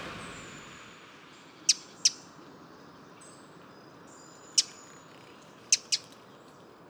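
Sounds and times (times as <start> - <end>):
quiet background hiss: 0.0 - 6.1
Eurasian Wren alarm call in a woodland park in Paris, France: 1.7 - 2.3, 4.2 - 6.6.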